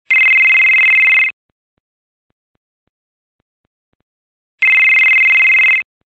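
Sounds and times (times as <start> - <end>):
Nextel Motorola phone ringtone: 0.1 - 1.4, 4.6 - 5.9.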